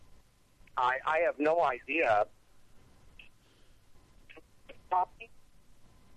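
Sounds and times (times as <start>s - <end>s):
faint hiss: 0.0s - 6.1s
speech: 0.8s - 2.4s, 4.9s - 5.4s
choppy phone-line audio breaking up: 4.7s - 5.3s.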